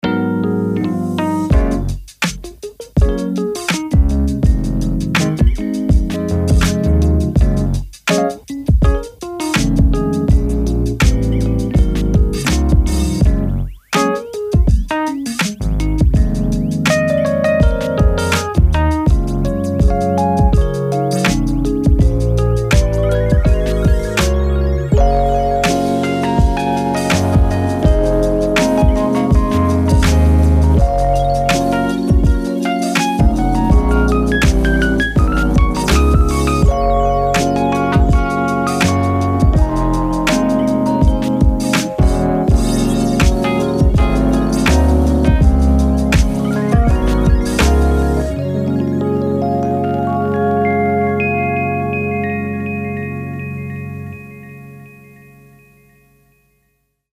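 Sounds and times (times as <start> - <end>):
electric keys with 1970s retro piano tone: 0.0 - 56.2.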